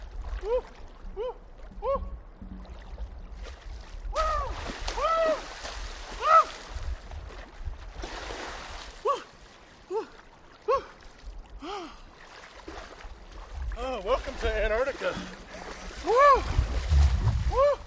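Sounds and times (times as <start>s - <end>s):
several people wading and splashing into a river: 0.0s - 17.8s
people whooping and shouting excitedly: 16.0s - 16.5s.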